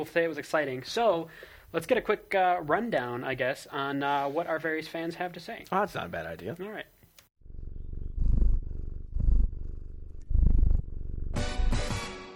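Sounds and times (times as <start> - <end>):
speech: 0.0 - 6.9
cat purring: 7.4 - 11.8.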